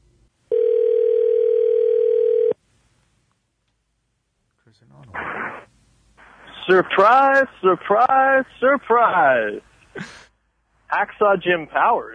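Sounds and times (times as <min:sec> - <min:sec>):
telephone dial tone for an incoming call: 0:00.5 - 0:02.6
speech: 0:06.7 - 0:10.2, 0:10.9 - 0:12.1.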